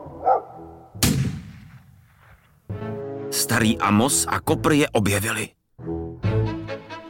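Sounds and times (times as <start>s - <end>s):
dog barking: 0.0s - 0.7s
rifle gunshots echoing: 1.0s - 2.4s
speech: 3.4s - 5.6s.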